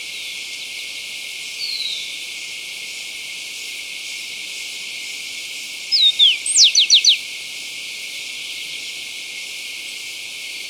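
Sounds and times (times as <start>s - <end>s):
Rufous-collared sparrow song in Ecuador: 5.9s - 7.2s.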